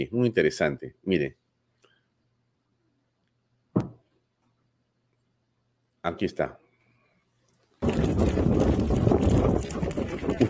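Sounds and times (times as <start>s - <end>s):
speech: 0.0s - 1.4s, 6.0s - 6.6s
running footsteps of a person: 7.8s - 10.4s.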